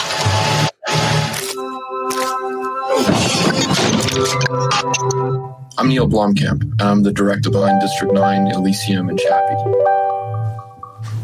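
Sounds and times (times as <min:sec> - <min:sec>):
music: 0:00.0 - 0:11.2
computers and a monitor strapped to the front of a Hummer being smashed: 0:02.9 - 0:05.3
speech: 0:04.2 - 0:10.0.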